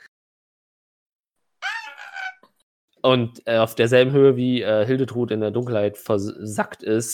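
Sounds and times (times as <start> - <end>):
person imitating a pitiful wailing scream: 1.6 - 2.5
speech: 3.0 - 7.1.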